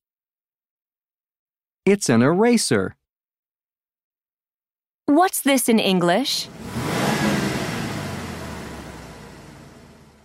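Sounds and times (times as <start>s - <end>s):
speech: 1.9s - 3.0s, 5.1s - 6.6s
car engine revving and accelerating: 6.4s - 10.2s.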